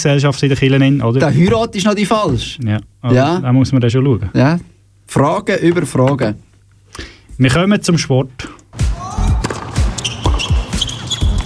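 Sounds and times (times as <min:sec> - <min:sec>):
speech: 0:00.0 - 0:08.8
ball bouncing in a tennis match: 0:09.4 - 0:11.4
sneakers squeaking on a court: 0:09.4 - 0:11.4.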